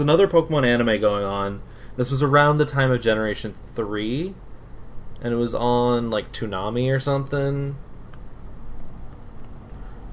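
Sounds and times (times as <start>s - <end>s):
speech: 0.0s - 4.5s, 5.2s - 7.9s
computer keyboard typing: 8.1s - 10.1s.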